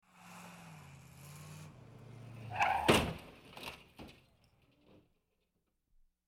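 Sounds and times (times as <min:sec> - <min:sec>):
car skidding: 0:00.0 - 0:04.0
car collision: 0:00.8 - 0:04.6.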